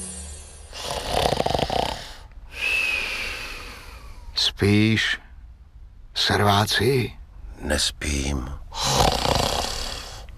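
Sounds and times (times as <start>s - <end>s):
loud rasping harsh snore: 0.7s - 2.2s, 8.8s - 10.1s
speech: 4.6s - 5.3s, 6.3s - 9.2s.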